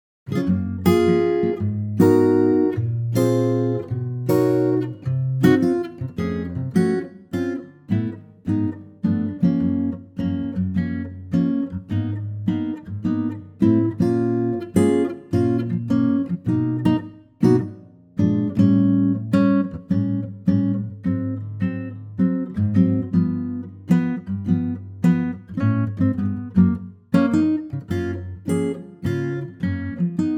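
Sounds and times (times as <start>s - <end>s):
intimate acoustic guitar arrangement in Gb: 0.3s - 30.3s.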